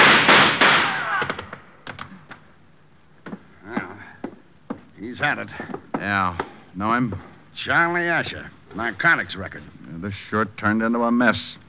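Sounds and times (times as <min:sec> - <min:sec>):
gunshots during an arrest: 0:00.0 - 0:01.5
speech: 0:05.1 - 0:11.6.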